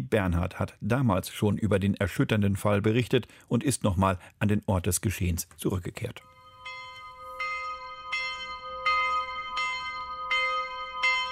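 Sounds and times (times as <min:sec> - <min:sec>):
speech: 0:00.1 - 0:06.4
cast school bell tolling for a memorial: 0:06.2 - 0:11.3.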